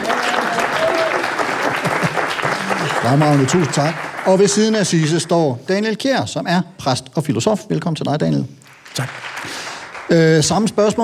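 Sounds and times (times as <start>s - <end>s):
audience applause: 0.0s - 5.6s, 8.7s - 11.0s
speech: 3.1s - 11.0s.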